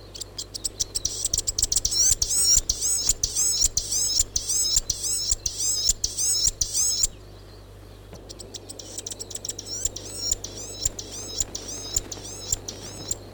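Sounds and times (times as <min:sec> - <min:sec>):
Chatham Island fantail sharp ticking clicks: 0:00.2 - 0:07.2, 0:08.2 - 0:13.2
Chatham Island fantail high wheezy rhythmic chirps: 0:00.6 - 0:07.2, 0:08.4 - 0:13.2.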